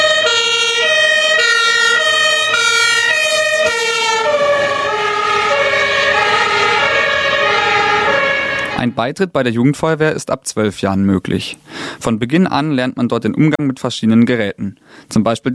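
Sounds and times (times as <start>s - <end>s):
loud two-tone fire engine siren: 0.0s - 9.0s
road noise: 0.0s - 9.1s
rumbling fire engine vehicle engine: 3.3s - 9.0s
speech: 9.0s - 15.5s.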